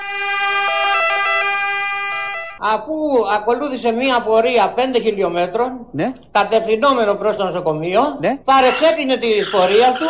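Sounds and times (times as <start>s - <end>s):
two-tone ambulance siren wailing: 0.0s - 2.6s
speech: 2.6s - 10.0s.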